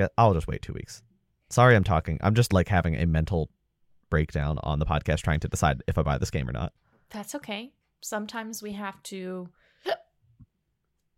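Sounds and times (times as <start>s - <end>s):
speech: 0.0s - 10.1s
hiccup: 9.8s - 10.2s.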